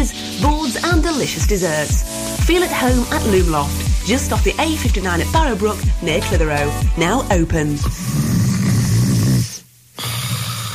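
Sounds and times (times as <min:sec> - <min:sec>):
speech: 0:00.0 - 0:08.3
person snoring loudly while sleeping at night: 0:07.8 - 0:10.7.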